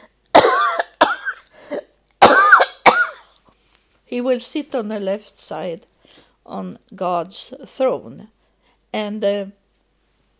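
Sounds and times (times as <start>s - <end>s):
person coughing harshly: 0.4s - 3.3s
speech: 4.1s - 9.6s.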